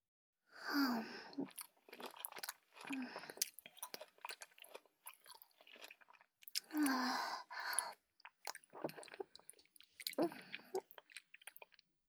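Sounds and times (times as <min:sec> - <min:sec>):
person chewing and biting into crunchy moist food: 0:01.4 - 0:07.1, 0:07.7 - 0:11.8.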